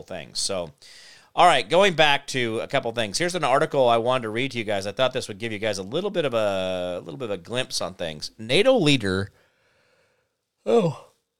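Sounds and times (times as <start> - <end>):
speech: 0.0 - 9.4, 10.6 - 11.1
person yawning: 10.6 - 11.2.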